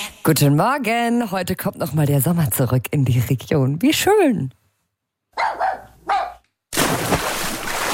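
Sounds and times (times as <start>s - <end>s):
speech: 0.3s - 4.6s
dachshund and German shepherd barking at an outdoor public swimming pool: 5.3s - 6.4s
continuous splashy water rush at an outdoor public swimming pool: 6.7s - 7.9s.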